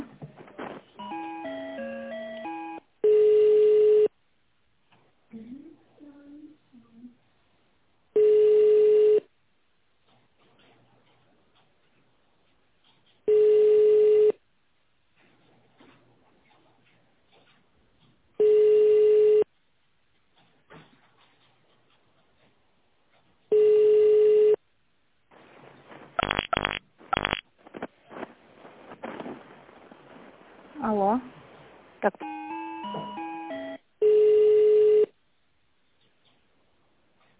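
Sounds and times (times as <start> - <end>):
faint low noise on a telephone line: 0.0 - 37.3
stepped dial-pad-like telephone line tones during a call transfer: 0.5 - 4.1, 8.2 - 9.3, 13.3 - 14.4, 18.4 - 19.5, 23.5 - 24.6, 26.1 - 30.4, 32.1 - 35.2
speech: 32.0 - 32.3.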